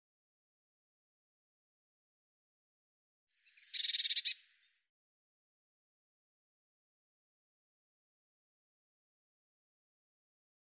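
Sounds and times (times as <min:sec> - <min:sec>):
Eurasian blue tit scolding call: 0:03.7 - 0:04.4.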